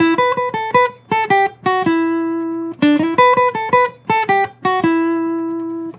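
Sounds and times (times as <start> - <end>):
acoustic melody loop in E minor: 0.0 - 5.9.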